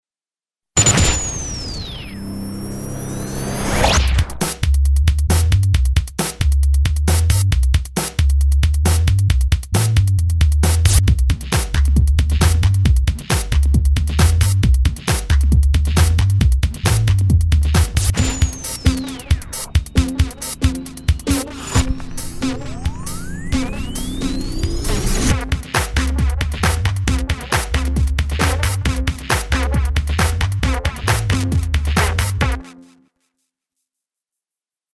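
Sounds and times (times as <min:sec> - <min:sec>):
synth: 0:00.8 - 0:04.4, 0:18.1 - 0:26.4
bass: 0:03.8 - 0:32.6.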